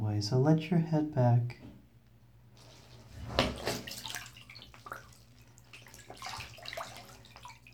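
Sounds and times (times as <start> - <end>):
speech: 0.2 - 1.6
water sloshing and splashing in a bathtub as a person submerges: 2.5 - 7.7.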